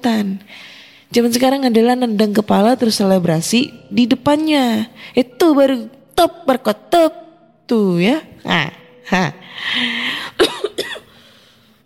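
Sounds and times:
speech: 0.0s - 10.4s
person coughing: 10.3s - 11.2s.

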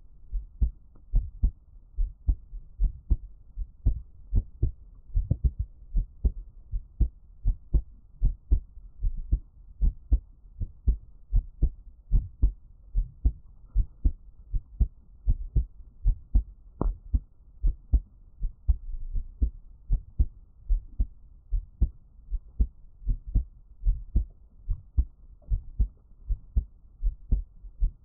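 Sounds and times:
soft rumbling hum: 0.0s - 28.0s
heartbeat thumping at a resting pace: 0.3s - 28.0s.

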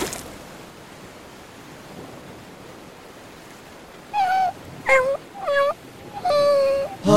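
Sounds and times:
frightened small dog on a rowing boat whimpering and yelping: 4.2s - 7.0s.

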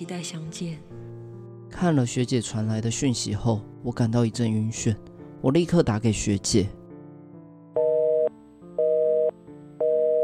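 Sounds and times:
speech: 0.0s - 6.8s
telephone busy signal on a call not connecting: 7.8s - 10.2s.

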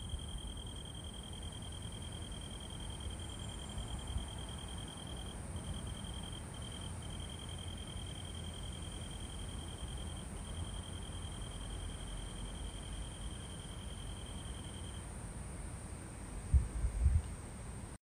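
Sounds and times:
evening insects chirping: 0.0s - 17.9s.

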